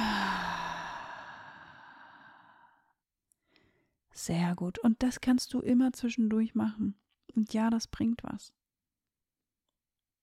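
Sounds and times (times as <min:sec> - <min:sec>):
deep breathy exhale during a guided relaxation breathing exercise: 0:00.0 - 0:02.9
speech: 0:04.2 - 0:08.6.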